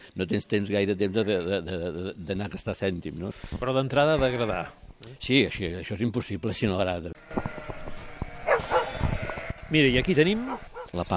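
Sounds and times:
speech: 0.2s - 7.7s, 9.7s - 11.1s
sheepdog barking while guarding a flock in the countryside: 8.4s - 9.0s, 10.5s - 11.0s.

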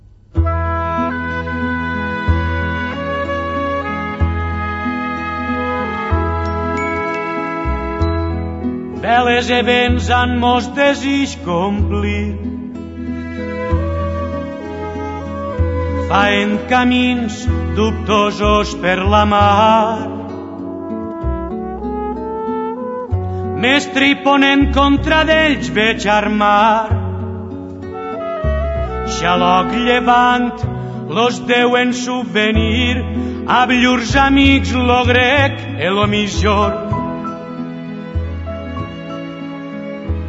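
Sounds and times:
steady instrumental backing: 0.0s - 40.2s
Catalan singer-songwriter singing slow sustained lines: 9.0s - 12.5s, 16.0s - 20.4s, 23.6s - 27.2s, 29.0s - 37.2s
speech: 9.3s - 12.5s, 16.1s - 20.1s, 23.6s - 27.0s, 29.2s - 36.9s.

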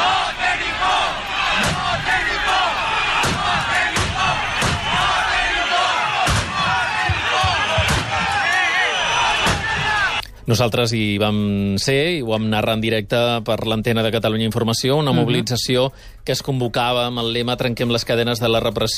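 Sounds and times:
crowd of protesters shouting and roaring outside a government subdelegation: 0.0s - 10.2s
police shotguns firing warning shots into the air: 3.2s - 5.2s, 6.2s - 8.5s
speech: 10.5s - 18.9s.

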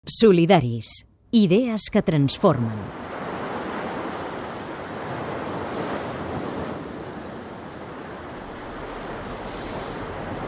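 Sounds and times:
speech: 0.0s - 3.1s
sea surf washing onto a shore: 1.5s - 10.4s
wind rumble: 3.9s - 10.4s.

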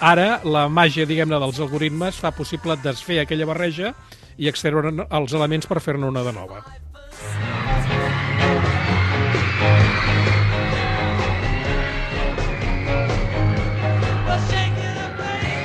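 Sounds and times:
speech: 0.0s - 7.9s
high-pitched screaming from fans: 7.2s - 15.6s
driving live rock band playing: 7.4s - 15.6s.

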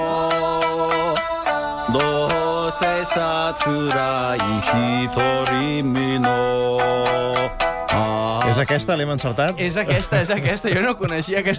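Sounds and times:
sung melody of a Japanese song: 0.0s - 8.9s
bright accompaniment: 0.0s - 11.5s
crisp regular percussion hits: 0.0s - 11.5s
speech: 1.9s - 11.5s.

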